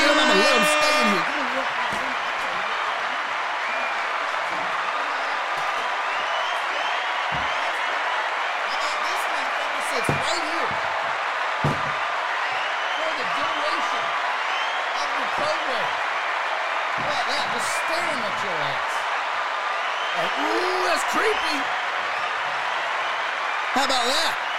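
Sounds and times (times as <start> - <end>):
dense crowd roar of many indistinct voices: 0.0 - 24.5
occasional claps: 0.0 - 24.5
thumps: 10.0 - 12.1.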